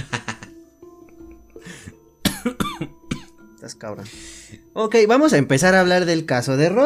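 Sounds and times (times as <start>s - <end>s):
throaty breath: 1.6s - 2.0s, 4.1s - 4.6s
person coughing in harsh bursts: 2.2s - 3.4s
speech: 3.7s - 6.8s.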